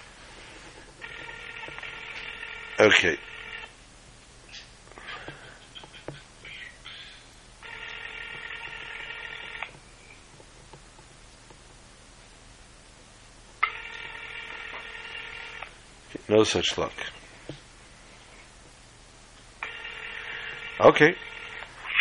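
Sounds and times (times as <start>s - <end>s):
buzzy phone ring tones on an outgoing call: 1.0s - 3.8s, 7.6s - 9.8s, 13.6s - 15.8s, 19.6s - 21.9s
speech: 2.8s - 3.4s, 16.3s - 17.2s, 20.8s - 21.3s.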